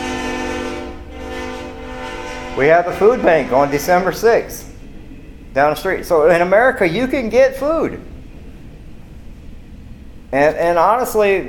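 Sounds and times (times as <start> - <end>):
train horn blaring: 0.0 - 4.6
passing train rumble: 0.0 - 11.4
speech: 2.6 - 4.7, 5.6 - 8.1, 10.3 - 11.4.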